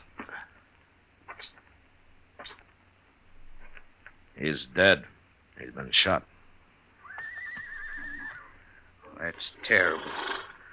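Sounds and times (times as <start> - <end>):
speech: 4.4 - 6.3, 9.3 - 10.4
horse whinnying: 7.0 - 8.8.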